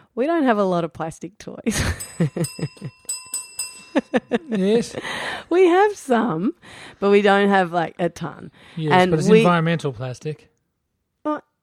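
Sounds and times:
speech: 0:00.2 - 0:03.1, 0:04.0 - 0:10.5, 0:11.2 - 0:11.4
bell ringing in bright fairly loud dings: 0:01.8 - 0:05.2.

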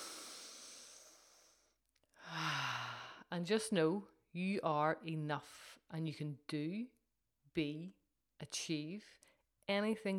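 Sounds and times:
breathy exhale: 0:00.0 - 0:01.6
slow deep breath taken during a guided pause: 0:00.0 - 0:03.2
speech: 0:03.3 - 0:07.0, 0:07.6 - 0:10.1.

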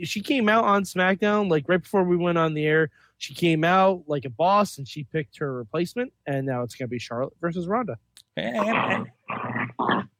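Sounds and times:
speech: 0:00.0 - 0:10.1
dog growling: 0:08.6 - 0:10.1.

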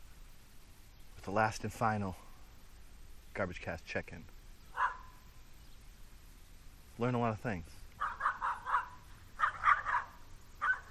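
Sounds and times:
speech: 0:01.2 - 0:02.3, 0:03.4 - 0:04.4, 0:07.0 - 0:07.8
dog barking: 0:04.7 - 0:05.2, 0:08.0 - 0:10.8.

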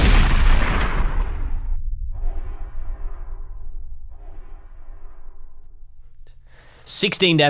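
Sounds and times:
shotgun blast: 0:00.0 - 0:02.8.

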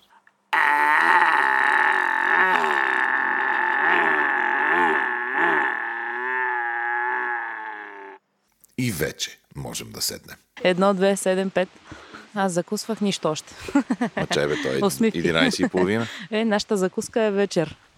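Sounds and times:
man imitating a bull bellowing moo: 0:00.5 - 0:08.2
speech: 0:09.2 - 0:17.8
laughter: 0:13.7 - 0:16.2.

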